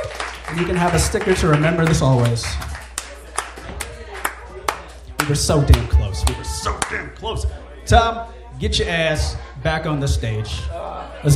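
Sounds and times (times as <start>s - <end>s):
slow hand claps: 0.0s - 7.0s
speech: 0.5s - 2.8s, 5.3s - 11.3s
faint murmuring voices: 2.0s - 11.3s.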